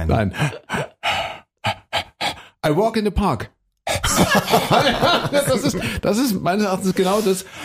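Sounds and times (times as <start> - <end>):
speech: 0.0 - 0.6, 2.7 - 7.6
exaggerated rhythmic breathy huffs: 0.3 - 2.6
laughter: 4.0 - 6.0.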